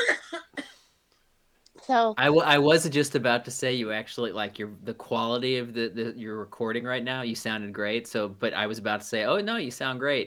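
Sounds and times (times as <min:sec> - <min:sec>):
person coughing: 0:00.0 - 0:00.8
speech: 0:01.9 - 0:10.2.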